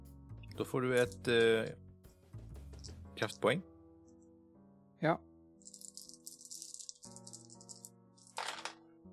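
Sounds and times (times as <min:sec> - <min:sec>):
speech: 0:00.6 - 0:01.8, 0:03.2 - 0:03.7, 0:05.0 - 0:05.3
dice rolled in a game clattering across a surface: 0:05.6 - 0:08.8.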